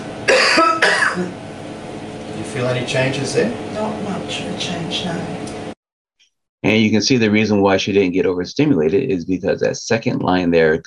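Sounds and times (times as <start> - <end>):
woman coughing on request while her stimulation is tested: 0.3 - 1.4
speech: 2.6 - 5.6, 6.6 - 10.8.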